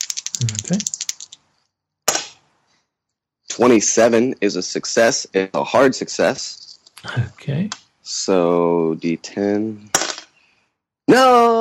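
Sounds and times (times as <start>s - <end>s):
speech: 0.4s - 1.0s, 3.6s - 10.0s, 11.1s - 11.5s
gunshot sound effect: 2.1s - 2.4s.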